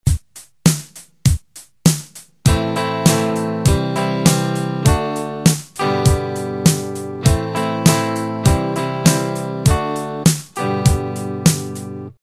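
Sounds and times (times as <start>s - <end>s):
guitar strumming normally: 2.5s - 12.2s.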